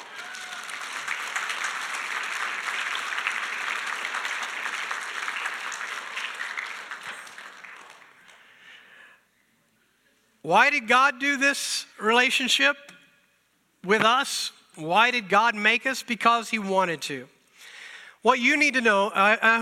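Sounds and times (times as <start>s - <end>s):
audience applause: 0.0s - 8.6s
speech: 10.4s - 12.9s, 13.8s - 17.4s, 18.2s - 19.5s.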